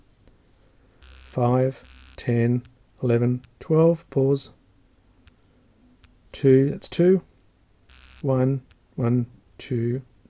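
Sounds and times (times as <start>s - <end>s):
watch haptic short loud buzzing pulses: 1.0s - 2.6s, 7.9s - 8.7s
low hum: 1.0s - 3.6s
speech: 1.3s - 4.6s, 6.4s - 7.3s, 8.2s - 10.2s.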